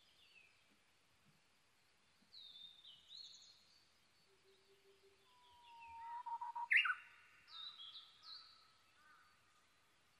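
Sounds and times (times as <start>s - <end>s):
Japanese bush warbler singing: 2.3s - 9.3s.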